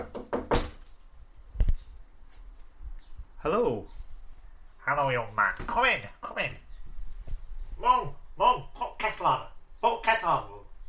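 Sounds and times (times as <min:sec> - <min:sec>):
knocking on a door: 0:00.0 - 0:00.8
speech: 0:03.4 - 0:04.0, 0:04.9 - 0:06.6, 0:07.8 - 0:10.6.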